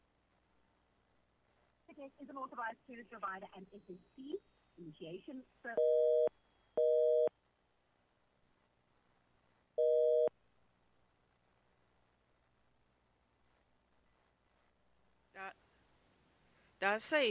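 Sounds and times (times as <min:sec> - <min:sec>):
speech: 0:01.9 - 0:06.2, 0:16.8 - 0:17.3
telephone busy tone after a dropped phone call: 0:05.8 - 0:07.3, 0:09.8 - 0:10.3.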